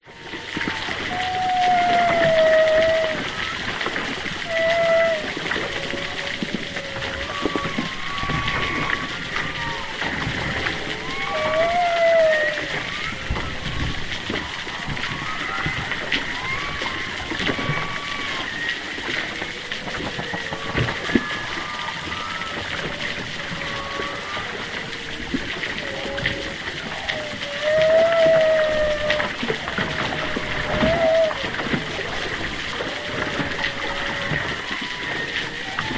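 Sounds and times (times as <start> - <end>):
choppy water movement underwater: 0.0 - 35.9
distant humpback whales underwater off east Australia: 0.0 - 35.9.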